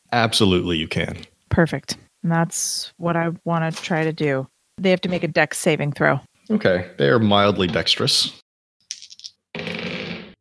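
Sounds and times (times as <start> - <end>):
speech: 0.1 - 8.4
dice rolling on a table: 8.9 - 10.4.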